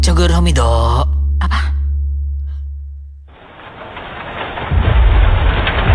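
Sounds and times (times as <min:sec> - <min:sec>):
speech: 0:00.1 - 0:01.8
deep rumble of thunder: 0:03.3 - 0:05.9
steady hissing rainfall: 0:03.3 - 0:05.9.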